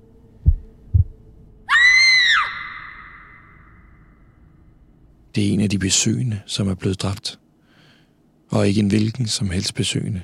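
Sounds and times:
deep heartbeat thuds: 0.4s - 1.3s
loud sustained high-pitched scream: 1.7s - 4.2s
speech: 5.4s - 7.4s, 8.5s - 10.2s.

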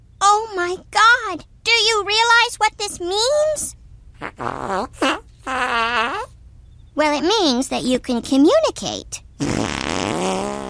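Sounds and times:
speech: 0.5s - 5.6s, 7.0s - 10.6s
farting: 4.2s - 6.3s, 9.4s - 10.6s.

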